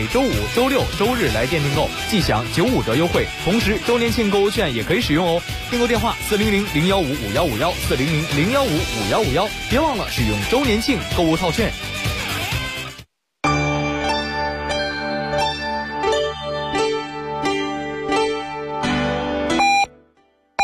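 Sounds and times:
speech: 0:00.0 - 0:11.9
music: 0:00.0 - 0:20.5
hourly time signal beeps on a city radio station: 0:19.6 - 0:19.9.

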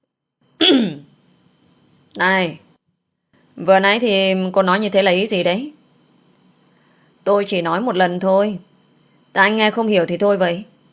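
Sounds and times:
man clearing his throat: 0:00.6 - 0:01.0
speech: 0:00.7 - 0:01.0, 0:02.2 - 0:02.6, 0:03.6 - 0:05.8, 0:07.2 - 0:08.7, 0:09.3 - 0:10.7.

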